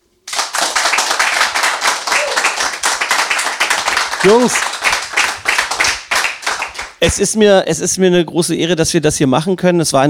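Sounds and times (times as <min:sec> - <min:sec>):
crowd of fans clapping and applauding: 0:00.2 - 0:07.1
speech: 0:04.2 - 0:04.7, 0:07.0 - 0:10.0.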